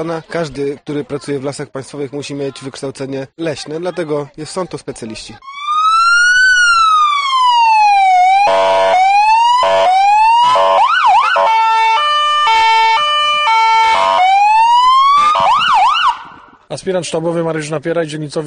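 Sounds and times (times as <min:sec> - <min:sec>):
speech: 0:00.0 - 0:05.6, 0:16.8 - 0:18.4
police car siren cycling through wail, yelp and hi-lo modes: 0:05.4 - 0:16.5.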